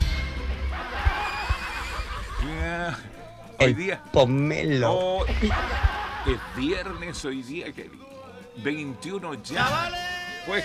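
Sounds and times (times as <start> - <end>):
soft low thumps: 0.0 - 7.3
laughter: 0.0 - 10.6
racehorse neighing: 0.0 - 10.6
speech: 2.7 - 10.6.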